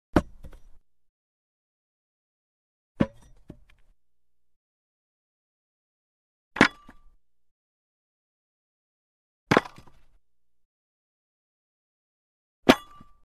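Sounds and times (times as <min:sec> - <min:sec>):
dull axe falling on ground: 0:00.2 - 0:00.8, 0:03.0 - 0:03.9, 0:06.6 - 0:07.2, 0:09.5 - 0:10.2, 0:12.7 - 0:13.2.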